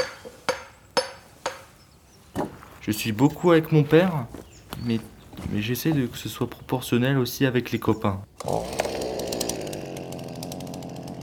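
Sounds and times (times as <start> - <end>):
speech: 2.8 - 8.8
chainsaw engine running at high revs: 8.3 - 11.2.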